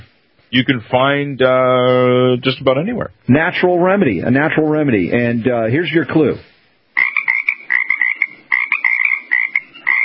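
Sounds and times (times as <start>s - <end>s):
speech: 0.5s - 6.5s
frog croaking in rapid rattling calls: 7.0s - 10.0s.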